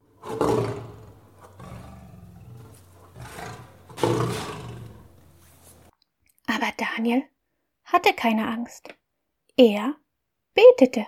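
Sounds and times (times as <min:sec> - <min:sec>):
lions roaring: 0:00.0 - 0:05.9
speech: 0:07.0 - 0:07.3, 0:07.9 - 0:09.0, 0:09.6 - 0:10.0, 0:10.6 - 0:11.0.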